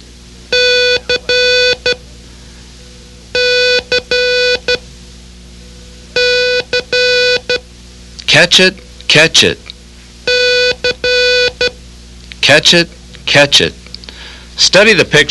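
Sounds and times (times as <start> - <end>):
Morse code letter C keyed as a steady beeping tone: 0.5 - 2.0, 3.3 - 4.8, 6.2 - 7.6, 10.3 - 11.8
speech: 8.4 - 9.6, 12.5 - 13.8, 14.6 - 15.3.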